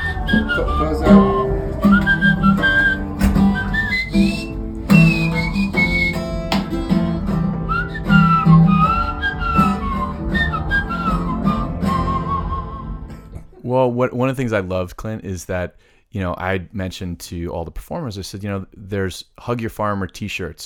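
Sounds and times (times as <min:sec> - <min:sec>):
full band accompaniment: 0:00.0 - 0:13.4
shrill teeth whistle copying a lead guitar solo: 0:00.0 - 0:13.4
speech: 0:00.3 - 0:01.4, 0:13.8 - 0:20.6.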